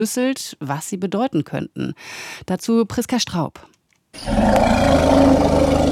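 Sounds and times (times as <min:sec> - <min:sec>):
speech: 0:00.0 - 0:05.8
African elephant rumble: 0:04.2 - 0:05.8.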